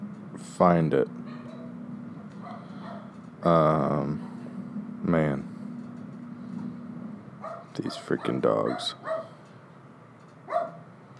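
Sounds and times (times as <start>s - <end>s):
speech: 0.4s - 1.2s, 3.4s - 4.3s, 5.0s - 5.5s, 7.8s - 9.1s
dogs barking: 1.2s - 1.8s, 2.4s - 3.2s, 7.4s - 9.4s, 10.5s - 10.8s.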